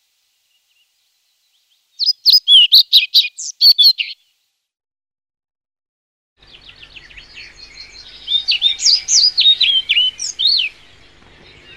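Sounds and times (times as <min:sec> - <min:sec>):
European pied flycatcher singing: 0:00.5 - 0:04.4, 0:06.4 - 0:11.7.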